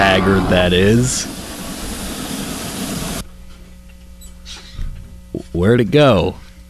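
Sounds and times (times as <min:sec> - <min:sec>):
burst of steam hissing: 0:00.0 - 0:03.2
train engine idling in the station: 0:00.0 - 0:03.2
speech: 0:00.2 - 0:01.4, 0:05.5 - 0:06.4.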